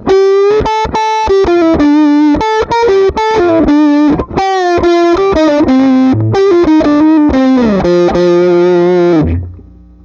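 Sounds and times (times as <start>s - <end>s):
1984 Guild guitar with no pedal: 0.0s - 10.0s.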